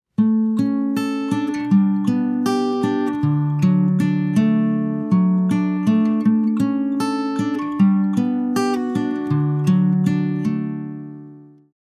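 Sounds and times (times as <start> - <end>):
raw guitar: 0.2 - 11.6.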